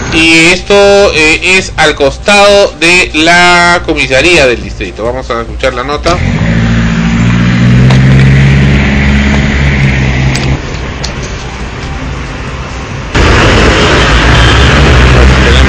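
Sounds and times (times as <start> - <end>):
speech: 0.2 - 6.8
noisy car engine rumbling on a city street by the police station: 6.0 - 11.7, 12.8 - 15.6.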